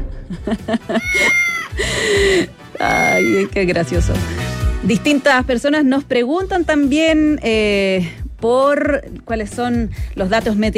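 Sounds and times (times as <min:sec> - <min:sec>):
speech: 0:00.3 - 0:10.7
cat meowing: 0:02.8 - 0:03.5.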